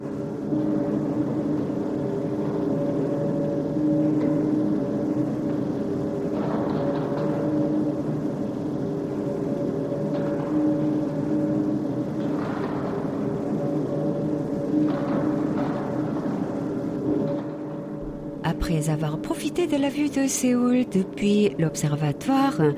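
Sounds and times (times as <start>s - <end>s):
high-speed elevator ascending with mechanical drone and whooshing rush: 0.0s - 22.7s
speech: 0.8s - 1.8s, 18.7s - 22.7s.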